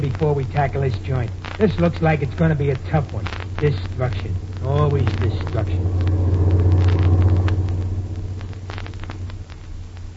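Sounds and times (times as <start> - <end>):
speech: 0.0 - 6.2
truck engine rumbling with a heavy steady low drone: 2.7 - 10.1.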